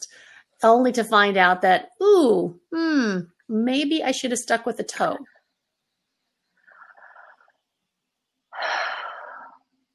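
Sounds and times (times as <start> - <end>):
speech: 0.6 - 5.4
deep breath: 6.6 - 7.6, 8.5 - 9.7.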